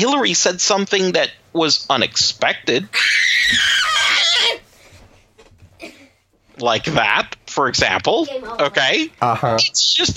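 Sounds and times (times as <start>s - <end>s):
speech: 0.0s - 3.7s, 6.6s - 10.1s
child screaming: 2.9s - 4.6s.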